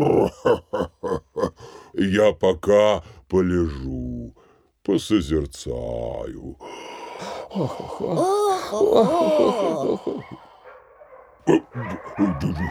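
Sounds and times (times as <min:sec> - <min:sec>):
speech: 0:00.0 - 0:00.6, 0:02.0 - 0:04.0, 0:04.9 - 0:10.5, 0:11.4 - 0:12.6
laughter: 0:00.0 - 0:01.7, 0:07.4 - 0:10.7, 0:11.4 - 0:12.6
dogs yelping and whining: 0:09.3 - 0:12.6
dog barking: 0:10.1 - 0:12.6.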